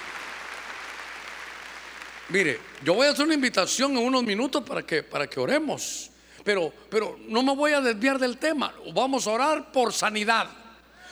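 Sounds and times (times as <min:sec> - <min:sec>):
crowd applauding loudly: 0:00.0 - 0:02.9
speech: 0:02.3 - 0:10.6.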